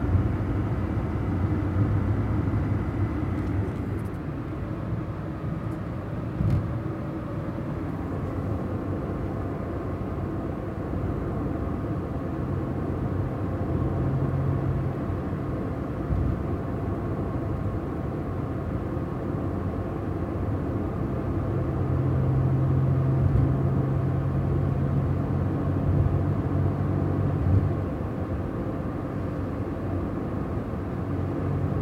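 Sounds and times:
car engine hum: 0.0 - 31.8
car riding along the highway: 0.0 - 31.8.

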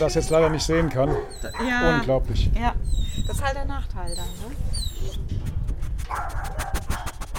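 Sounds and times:
dog whimpering: 0.0 - 2.1, 2.8 - 5.3
speech: 0.0 - 5.5, 6.1 - 6.8.

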